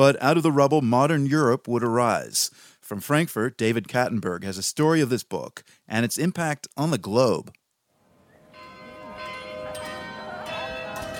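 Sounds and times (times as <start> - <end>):
speech: 0.0 - 7.6
church bells ringing: 8.4 - 11.1.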